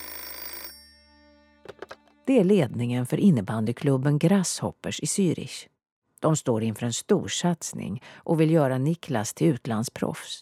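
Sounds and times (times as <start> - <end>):
telephone ringing electronically: 0.0 - 1.0
speech: 2.3 - 10.4.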